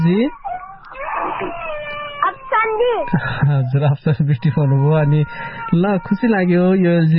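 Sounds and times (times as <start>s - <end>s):
speech: 0.0s - 0.4s, 1.3s - 1.7s, 2.6s - 7.1s
small girl crying: 0.6s - 6.5s.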